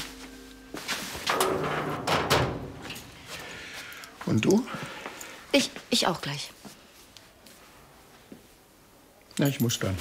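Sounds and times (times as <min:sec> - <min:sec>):
door opening with clunks and scraping slide: 0:01.2 - 0:03.2
speech: 0:04.3 - 0:06.6, 0:09.4 - 0:10.0.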